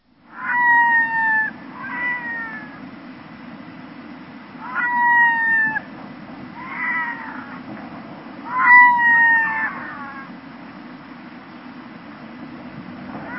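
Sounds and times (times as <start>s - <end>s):
Red-throated Loon calling: 0.4s - 2.8s, 4.6s - 5.8s, 6.6s - 7.6s, 8.5s - 10.3s.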